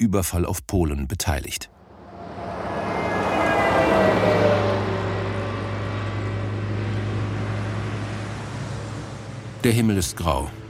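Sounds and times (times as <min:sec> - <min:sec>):
speech: 0:00.0 - 0:01.8, 0:09.6 - 0:10.6
heavy trucks roaring past on a road: 0:01.7 - 0:10.6
traffic noise: 0:01.7 - 0:10.6.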